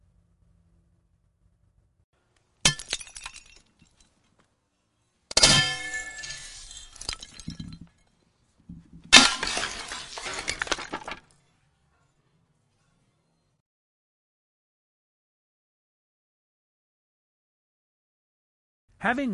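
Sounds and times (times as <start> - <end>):
clay pots smashed by an iron scepter: 2.6 - 4.2, 5.3 - 8.1, 8.7 - 11.4
clay pot shards clattering: 2.7 - 4.2, 5.3 - 8.1, 9.1 - 11.3
speech: 19.0 - 19.3.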